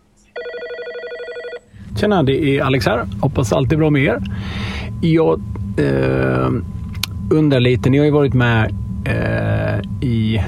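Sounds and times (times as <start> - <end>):
telephone ringing for incoming call: 0.3 - 1.7
speech: 2.0 - 10.4.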